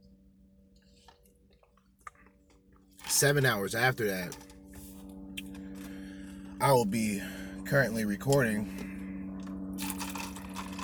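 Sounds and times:
speech: 3.1 - 4.5, 6.6 - 8.8
person drinking water: 8.8 - 10.8.

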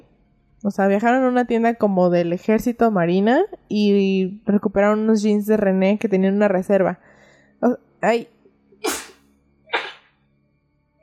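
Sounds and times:
speech: 0.6 - 9.0
person sneezing: 8.8 - 10.1.

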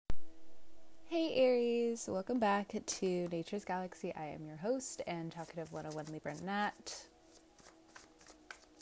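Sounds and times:
speech: 1.1 - 7.1
deck of tarot cards being shuffled: 5.4 - 6.5, 7.2 - 8.7.

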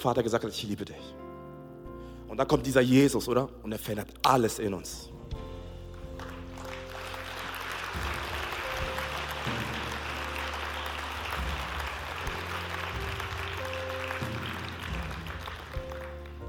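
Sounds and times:
speech: 0.0 - 1.2, 2.3 - 5.2
crowd applauding: 5.9 - 16.4.

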